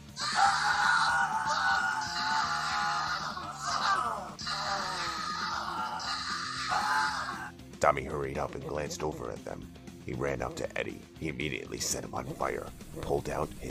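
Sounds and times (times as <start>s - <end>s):
people screaming in pain: 0.0s - 7.5s
speech: 7.8s - 13.7s.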